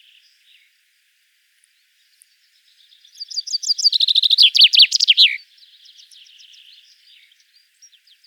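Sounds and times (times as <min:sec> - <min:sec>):
common chaffinch Fringilla coelebs singing: 0:02.0 - 0:08.2.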